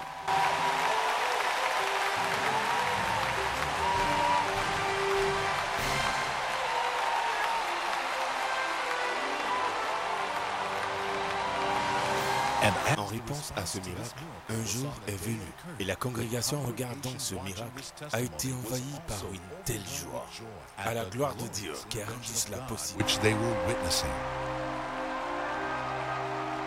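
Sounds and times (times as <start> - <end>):
large audience clapping: 0.0 - 26.6
speech: 12.7 - 24.6.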